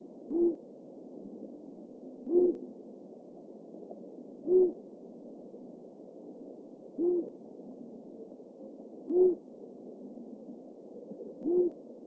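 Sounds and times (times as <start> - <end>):
long-eared owl Asio otus hooting: 0.3 - 0.6, 2.2 - 2.6, 4.4 - 4.8, 7.0 - 7.4, 9.1 - 9.4, 11.4 - 11.8.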